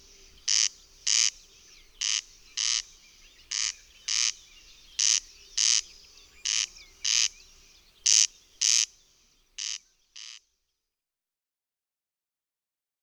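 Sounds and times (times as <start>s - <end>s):
Corn crake rasping: 0.0s - 9.0s, 9.6s - 10.4s.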